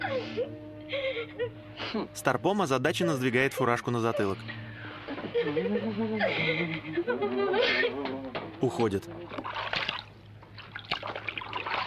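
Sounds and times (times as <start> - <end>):
speech: 1.4 - 4.6, 5.4 - 9.8
laughter: 5.0 - 8.5
water sloshing and splashing as a towel is swished in a filled bathtub: 8.6 - 11.8
water dripping and trickling in a bathtub: 9.3 - 11.8.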